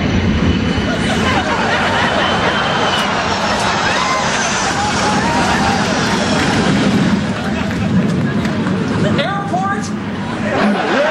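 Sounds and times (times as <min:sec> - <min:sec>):
low-flying airplane roaring overhead: 0:00.0 - 0:11.0
laughter: 0:00.7 - 0:09.5, 0:10.2 - 0:11.0
voices and chatter: 0:04.6 - 0:10.8.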